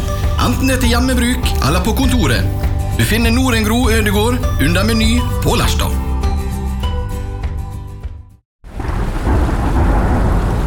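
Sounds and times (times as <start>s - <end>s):
music: 0.0s - 8.4s
speech: 0.5s - 6.1s
loud steady downpour of rain: 8.6s - 10.6s.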